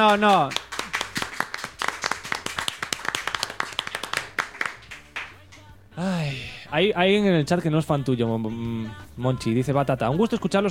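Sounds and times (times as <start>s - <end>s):
speech: 0.0s - 0.6s, 6.0s - 10.6s
hands clapping: 0.0s - 5.7s.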